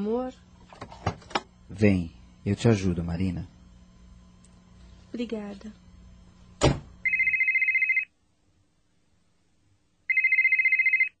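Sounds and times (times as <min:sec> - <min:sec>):
speech: 0:00.0 - 0:00.5, 0:01.7 - 0:03.5, 0:05.1 - 0:05.8
short thud: 0:06.6 - 0:07.0
telephone ringing with a rapid high warble: 0:07.0 - 0:08.1, 0:10.1 - 0:11.1.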